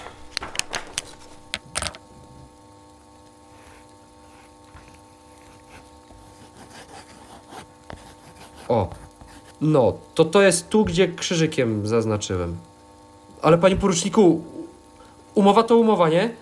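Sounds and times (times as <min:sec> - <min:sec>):
steady low hum: 0:00.0 - 0:15.4
pen scratching on paper while drawing a map: 0:03.5 - 0:09.6
speech: 0:09.6 - 0:12.7, 0:13.4 - 0:14.6, 0:15.4 - 0:16.4.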